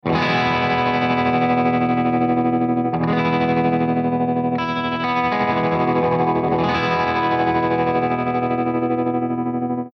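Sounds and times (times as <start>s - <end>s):
P90 tremolo guitar: 0.0s - 9.9s.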